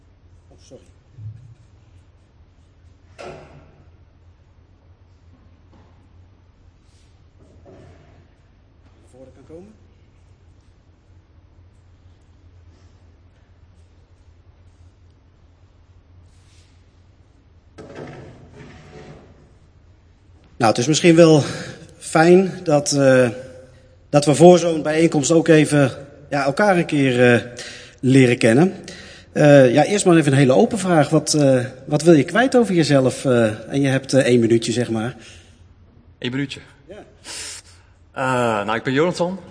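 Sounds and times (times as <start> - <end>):
speech: 0.6 - 1.4, 9.5 - 9.8, 20.6 - 23.4, 24.1 - 35.4, 36.2 - 37.5, 38.2 - 39.5
chairs being moved and set down before a meeting: 7.4 - 8.4, 17.8 - 19.7.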